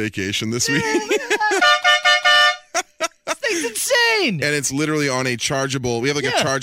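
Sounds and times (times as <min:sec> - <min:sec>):
speech: 0:00.0 - 0:01.4, 0:03.8 - 0:06.6
laughter: 0:00.6 - 0:02.0, 0:02.6 - 0:04.1
loud air horn blasts: 0:01.5 - 0:02.7.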